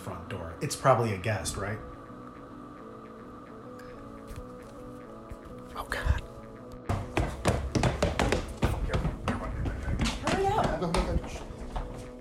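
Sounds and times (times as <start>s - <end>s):
speech: 0.1s - 1.9s
footsteps running up stairs and along a hallway in a bed and breakfast: 6.9s - 12.1s.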